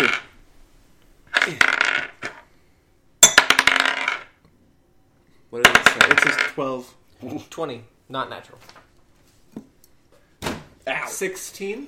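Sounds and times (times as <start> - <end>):
dice clattering on a hard tabletop: 0.0 - 0.3, 1.3 - 2.5, 3.3 - 4.4, 5.6 - 6.6
speech: 1.5 - 1.7, 6.6 - 8.8, 11.1 - 11.8.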